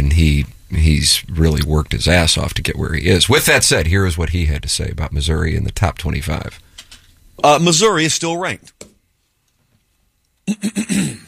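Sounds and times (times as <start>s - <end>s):
speech: 0.0s - 6.7s, 7.4s - 8.8s, 10.5s - 11.2s
throat clearing: 10.5s - 11.2s.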